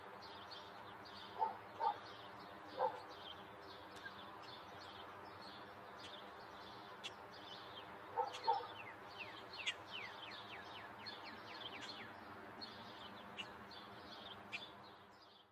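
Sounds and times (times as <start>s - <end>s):
faint birds chirping: 0.0s - 15.4s
dog barking: 1.4s - 2.0s, 2.8s - 3.0s, 8.2s - 8.8s.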